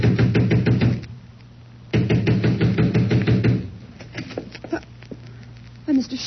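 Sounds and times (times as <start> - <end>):
loud rapid pounding on a front door: 0.0 - 1.1, 1.9 - 4.4.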